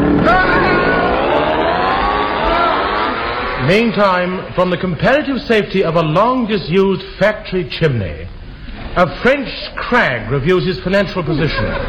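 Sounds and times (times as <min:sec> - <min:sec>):
outboard motor fitted onto a piano revving: 0:00.0 - 0:03.7
speech: 0:03.7 - 0:08.3, 0:09.0 - 0:11.8
laughter: 0:11.3 - 0:11.8.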